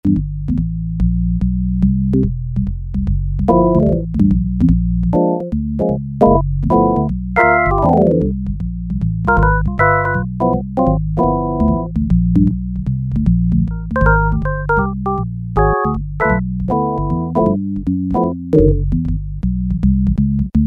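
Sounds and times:
Peavey DPM Spectrum Bass synth bass: 0:00.0 - 0:20.6
jazz B3 organ: 0:03.5 - 0:04.2, 0:05.1 - 0:08.3, 0:09.3 - 0:12.5, 0:13.4 - 0:19.0.

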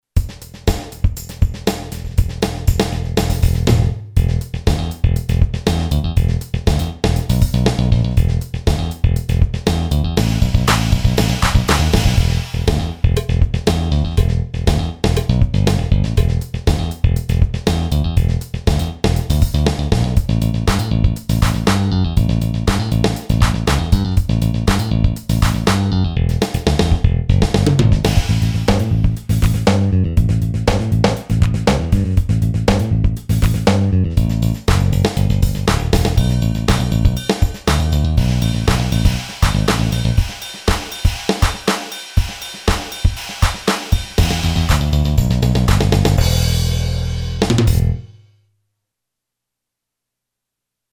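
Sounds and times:
heavy funk drum machine beat: 0:00.2 - 0:48.0.

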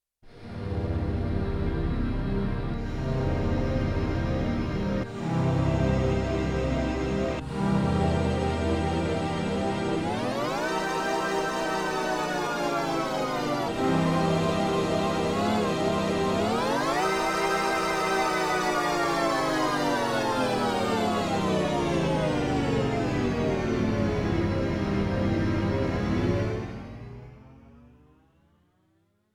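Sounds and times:
Mellotron strings sampled on a Yamaha TX16W: 0:00.3 - 0:27.5.

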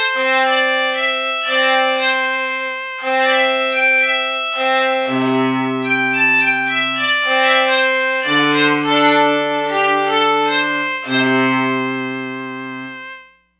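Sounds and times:
erhu patch on E-mu Proteus-3 synthesizer: 0:00.1 - 0:13.1.

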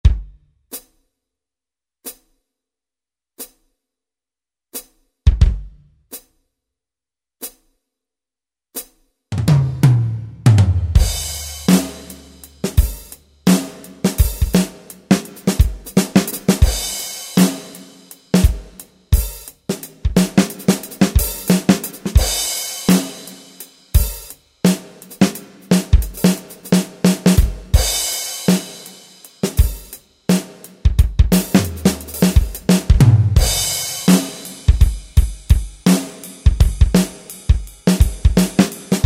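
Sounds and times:
standard drum kit voice on a keyboard: 0:00.0 - 0:00.9, 0:04.8 - 0:06.3, 0:08.8 - 0:39.0.

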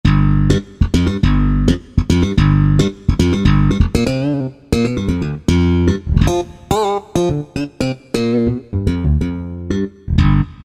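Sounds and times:
slap bass played on a Korg N364 keyboard: 0:00.0 - 0:10.6.

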